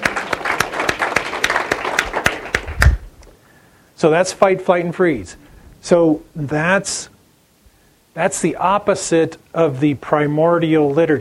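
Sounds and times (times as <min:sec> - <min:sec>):
audience applauding: 0:00.0 - 0:03.0
speech: 0:04.0 - 0:07.2, 0:08.2 - 0:11.1.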